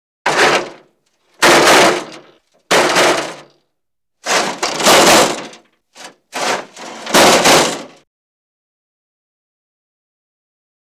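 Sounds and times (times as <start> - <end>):
metal tumbling crash: 0.3 - 0.8, 1.4 - 3.5, 4.2 - 8.0.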